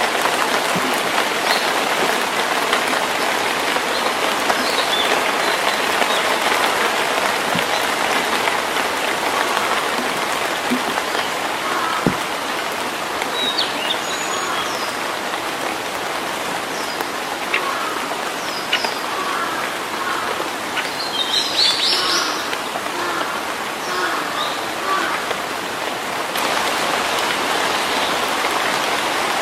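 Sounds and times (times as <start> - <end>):
rain drips and patters in a forest: 0.0 - 17.7
steady rain in a forest in early summer: 0.0 - 29.4.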